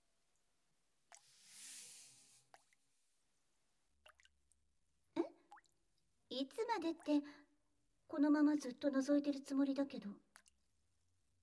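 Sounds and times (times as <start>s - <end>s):
shower spray running: 1.3s - 2.4s
water dripping in a shower: 4.0s - 7.3s, 10.3s - 10.8s
speech: 6.4s - 7.4s, 8.1s - 10.2s.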